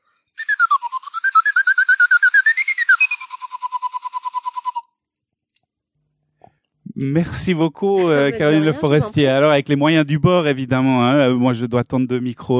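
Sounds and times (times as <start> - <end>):
small whistle blown in a fluttering trill: 0.1 - 5.2
laughter: 7.0 - 9.5
speech: 7.0 - 12.5.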